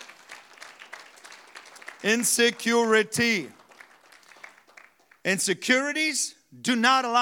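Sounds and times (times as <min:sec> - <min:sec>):
church congregation clapping their hands during a sermon: 0:00.0 - 0:05.4
speech: 0:02.0 - 0:03.6, 0:05.2 - 0:07.2.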